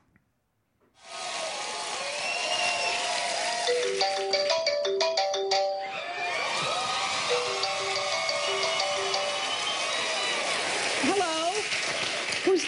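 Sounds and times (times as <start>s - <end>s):
loud crowd noise from an audience on a comedy show: 1.0s - 4.4s, 5.8s - 12.6s
phone ringing with a short electronic ringtone melody: 3.7s - 6.0s, 7.2s - 10.2s.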